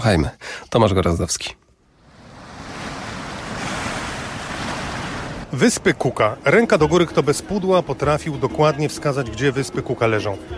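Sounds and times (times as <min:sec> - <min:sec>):
speech: 0:00.0 - 0:01.6, 0:05.5 - 0:10.5
ocean waves breaking on the shore of a Pacific island: 0:01.9 - 0:06.5
wind noise: 0:02.0 - 0:06.1.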